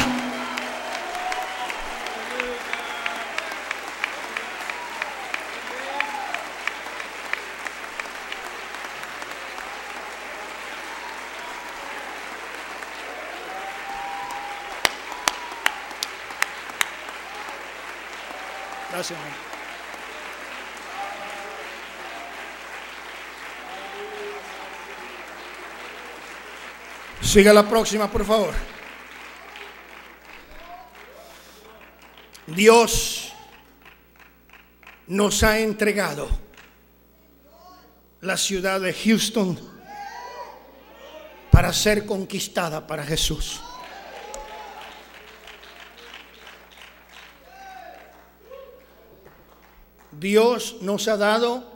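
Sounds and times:
faint cheering: 0.0 - 27.2, 28.7 - 32.4, 39.8 - 41.6, 43.6 - 46.6, 47.3 - 49.6
audience applauding: 0.0 - 35.5, 43.6 - 50.2
speech: 19.0 - 19.5, 27.2 - 28.8, 32.6 - 33.2, 35.1 - 36.4, 38.2 - 39.7, 41.6 - 43.7, 50.2 - 51.7.

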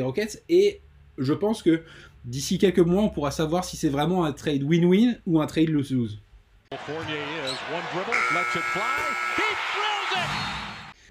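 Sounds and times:
speech: 0.0 - 10.6
excited indistinct voices in an arena: 6.7 - 10.9
arena noise: 6.7 - 11.0
electronic basketball game buzzer blaring: 8.1 - 9.6.

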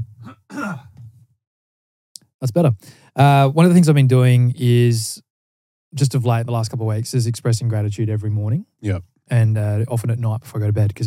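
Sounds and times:
raspy throat clearing: 0.2 - 1.0
speech: 2.4 - 5.3, 5.9 - 11.0.

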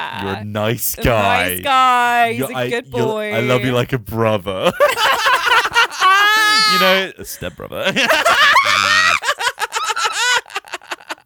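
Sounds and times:
breathy bursts of laughter: 0.0 - 1.7, 2.4 - 3.8, 4.4 - 11.2
speech: 0.1 - 5.3, 6.7 - 8.8
person screaming harshly into the microphone: 6.2 - 7.0, 8.5 - 9.2.

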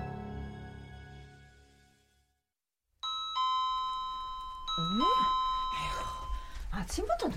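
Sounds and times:
mansion's two-note ding-dong doorbell chime: 3.0 - 6.6
second electronic doorbell ring: 3.0 - 6.6
speech: 6.9 - 7.3.

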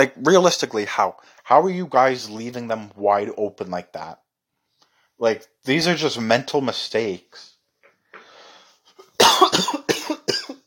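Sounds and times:
speech: 0.0 - 4.2, 5.2 - 7.5
soft intake of breath: 8.1 - 9.1
harsh fit of coughs: 9.0 - 10.6.

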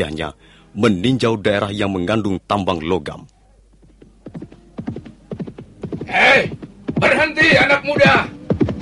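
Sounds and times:
speech: 0.0 - 3.3, 6.1 - 8.4
horse hooves clip-clopping at a trot under a rider: 3.7 - 8.8.

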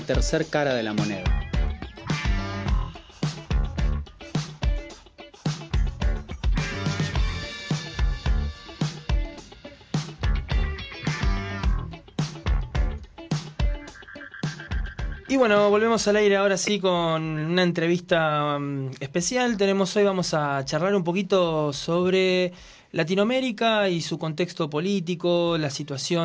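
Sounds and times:
song with punchy drum beat and layered melodic instruments: 0.0 - 16.7
speech: 0.1 - 1.4, 15.4 - 26.2.

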